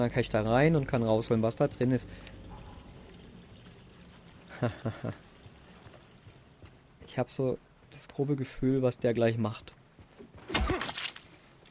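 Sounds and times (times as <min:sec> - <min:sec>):
speech: 0:00.0 - 0:02.4, 0:04.6 - 0:05.2, 0:07.1 - 0:09.8
water pouring and draining: 0:00.0 - 0:07.0.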